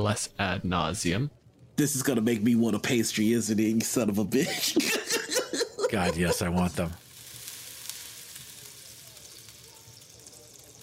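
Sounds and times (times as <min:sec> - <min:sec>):
speech: 0:00.0 - 0:05.1, 0:05.9 - 0:07.0
laughter: 0:04.4 - 0:07.0
caramel sizzling in a hot cast iron pan for a tarte tatin: 0:06.1 - 0:10.8.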